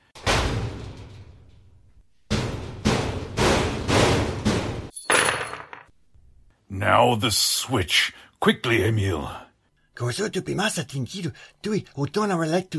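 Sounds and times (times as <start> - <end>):
heavy cabinet door closing with a thud: 0.1 - 1.7, 2.3 - 4.9
metal bolts thrown shut: 0.2 - 5.9
speech: 6.8 - 9.4, 10.0 - 12.7.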